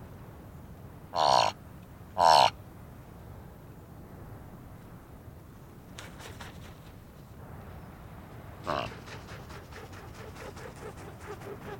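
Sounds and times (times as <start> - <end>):
Thick-billed raven croaks at a carcass on the Sanetti Plateau, Ethiopia: 1.1 - 1.6, 2.2 - 2.6, 8.6 - 9.0.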